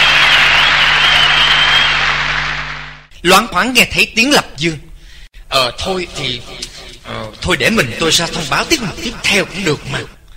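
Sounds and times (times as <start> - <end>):
audience applause at a singing contest: 0.0 - 3.1
speech: 3.2 - 4.9, 5.5 - 10.2.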